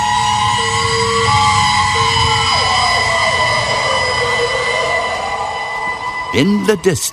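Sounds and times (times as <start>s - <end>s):
fire engine sirens wailing as emergency vehicles pass: 0.0s - 7.1s
speech: 6.3s - 7.1s.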